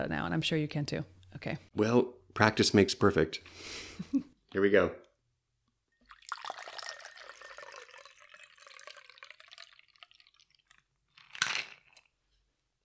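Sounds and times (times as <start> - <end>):
speech: 0.0 - 5.0
ice rattling inside a cocktail shaker: 6.2 - 12.1.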